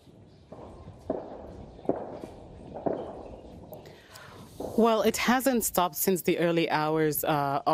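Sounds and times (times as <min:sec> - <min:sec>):
heavy artillery firing near army headquarters during fighting in Khartoum: 0:00.4 - 0:05.1
speech: 0:04.8 - 0:07.7.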